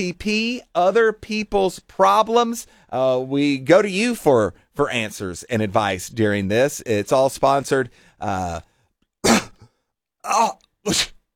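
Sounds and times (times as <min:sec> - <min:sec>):
speech: 0:00.0 - 0:08.7, 0:10.2 - 0:11.2
rough coughs clearing the throat: 0:09.2 - 0:09.7, 0:10.3 - 0:11.2.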